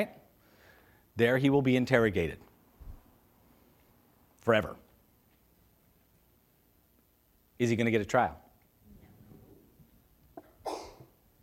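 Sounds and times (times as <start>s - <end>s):
speech: 0.0s - 0.2s, 1.2s - 2.5s, 4.4s - 4.8s, 7.6s - 8.4s
sneeze: 10.4s - 11.2s.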